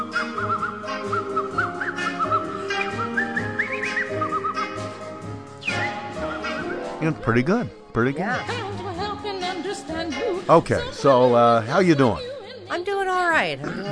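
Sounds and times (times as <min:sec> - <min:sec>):
woman whistling a lively tune: 0:00.0 - 0:04.7, 0:05.6 - 0:06.9
steady rhythmic music: 0:00.0 - 0:13.9
speech: 0:07.0 - 0:08.8, 0:10.5 - 0:12.3, 0:13.2 - 0:13.9.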